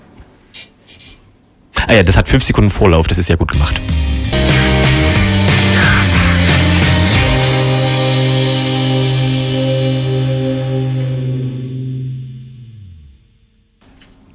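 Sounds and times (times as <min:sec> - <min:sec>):
speech: 0:01.9 - 0:04.0
loud full-band song from a concept album: 0:04.3 - 0:12.3.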